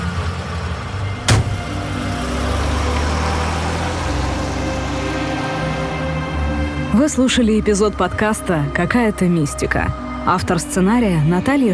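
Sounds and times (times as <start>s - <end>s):
car engine idling: 0.0s - 6.6s
speech: 7.0s - 11.7s.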